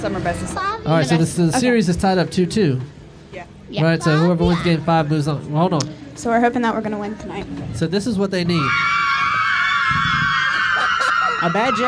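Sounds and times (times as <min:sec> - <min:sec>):
speech: 0:00.0 - 0:09.0, 0:11.4 - 0:11.8
person screaming imitating cheering sports fans: 0:10.0 - 0:11.8.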